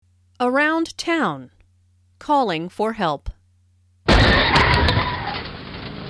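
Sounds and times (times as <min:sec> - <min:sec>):
speech: 0:00.4 - 0:01.6, 0:02.2 - 0:03.4
car crashing into a truck after running a red light: 0:04.1 - 0:06.0
clattering: 0:04.1 - 0:06.0.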